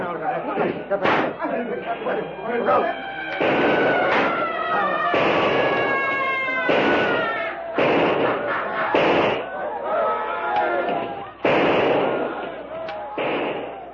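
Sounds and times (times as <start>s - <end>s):
battle commotion: 0.0s - 13.9s
attackers shrieking and bellowing: 0.1s - 13.9s
laughter: 0.1s - 13.9s
loud gunshots: 0.6s - 1.5s, 3.3s - 9.6s, 10.9s - 13.9s.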